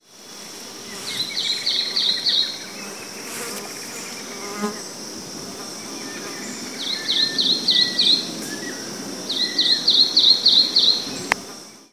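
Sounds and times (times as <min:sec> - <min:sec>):
Hylophilus poicilotis calls: 0:00.9 - 0:04.3, 0:05.9 - 0:11.4.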